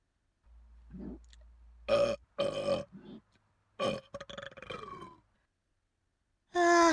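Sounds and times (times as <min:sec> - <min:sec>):
person burping: 0:01.9 - 0:03.2, 0:03.8 - 0:05.2.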